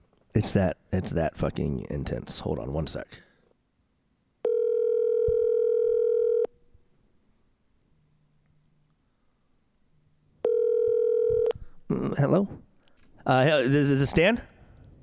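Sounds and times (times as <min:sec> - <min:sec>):
speech: 0:00.4 - 0:03.3, 0:12.1 - 0:12.6, 0:13.2 - 0:14.5
telephone line tone while dialing a number: 0:04.4 - 0:06.5, 0:10.4 - 0:11.5.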